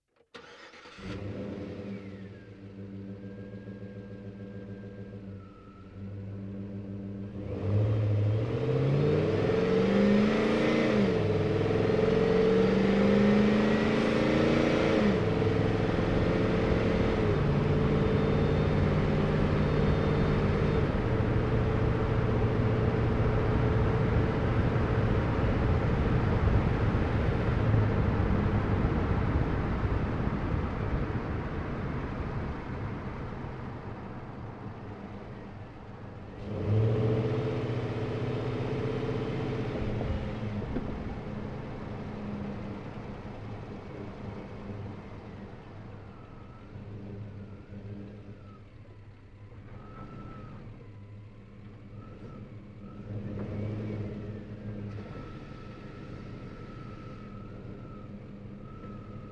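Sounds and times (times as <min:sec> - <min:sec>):
GMC Savana truck onboard accelerating and decelerating at medium fast speed: 0:00.2 - 0:59.2.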